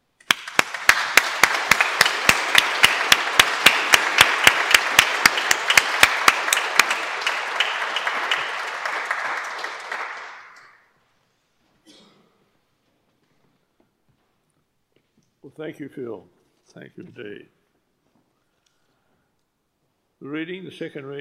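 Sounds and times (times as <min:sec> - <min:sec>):
one pair of hands clapping in a strong steady beat: 0:00.2 - 0:10.7
room full of people applauding: 0:00.2 - 0:10.8
speech: 0:15.6 - 0:17.6, 0:20.2 - 0:21.2.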